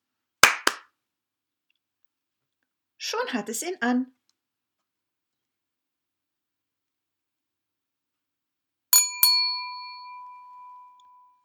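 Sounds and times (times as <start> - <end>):
hands clapping: 0.4 - 0.9
speech: 3.1 - 4.2.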